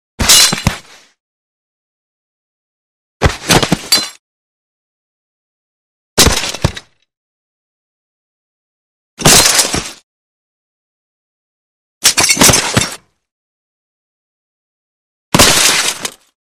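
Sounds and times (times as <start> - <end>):
body falling with heavy glass on concrete: 0.2 - 0.9, 3.2 - 4.2, 6.2 - 6.9, 9.2 - 10.0, 12.0 - 13.0, 15.4 - 16.3.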